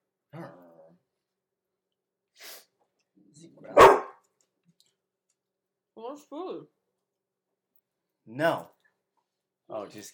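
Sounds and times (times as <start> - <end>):
puppy barking: 3.7 - 4.2
speech: 6.1 - 6.8, 8.3 - 8.7, 9.7 - 10.1.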